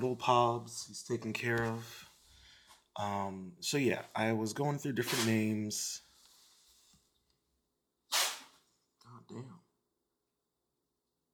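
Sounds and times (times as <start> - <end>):
speech: 0.0 - 2.0, 3.0 - 6.0, 9.2 - 9.6
person sneezing: 8.1 - 8.5.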